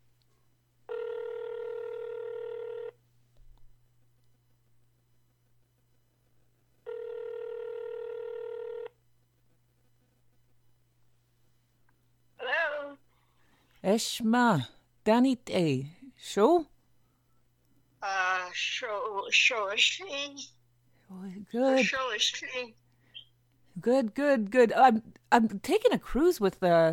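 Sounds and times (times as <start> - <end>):
phone line ringing with long buzzing tones: 0.9 - 3.0, 6.8 - 9.0
speech: 13.9 - 16.7, 18.6 - 22.8, 23.8 - 26.9.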